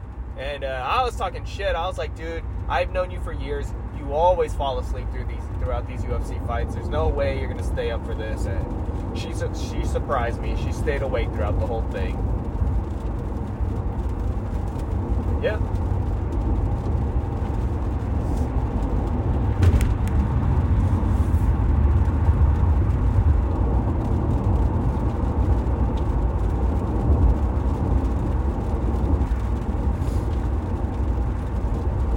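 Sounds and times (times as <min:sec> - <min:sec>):
car interior road noise while driving: 0:00.0 - 0:32.1
speech: 0:00.4 - 0:12.4, 0:15.4 - 0:15.8
faint bump: 0:19.6 - 0:20.1.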